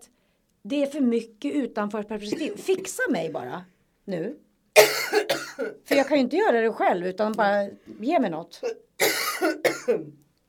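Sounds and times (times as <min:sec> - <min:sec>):
speech: 0:00.6 - 0:10.2
harsh hacking coughs: 0:02.3 - 0:02.7, 0:04.8 - 0:06.2, 0:08.6 - 0:10.2.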